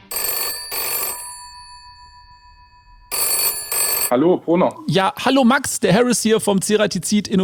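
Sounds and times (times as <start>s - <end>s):
telephone ringing with bright metallic bell tone: 0.1s - 4.1s
speech: 4.1s - 7.4s.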